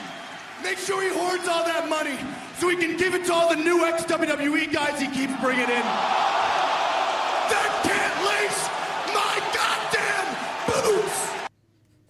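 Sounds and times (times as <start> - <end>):
large wrestling crowd cheering during a promo: 0.0 - 11.5
speech: 0.6 - 6.4
whoops and scattered yells: 5.8 - 11.5.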